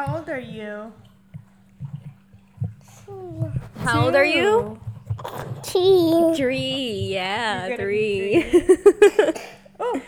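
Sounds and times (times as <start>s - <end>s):
speech: 0.0s - 1.1s, 3.1s - 10.0s
laughter: 7.8s - 10.0s
young girl coughing: 9.0s - 10.0s.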